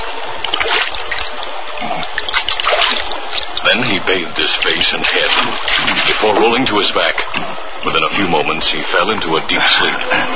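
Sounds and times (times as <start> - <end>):
stream trickling and splashing: 0.4 - 3.7, 4.9 - 6.6
speech: 4.0 - 10.3.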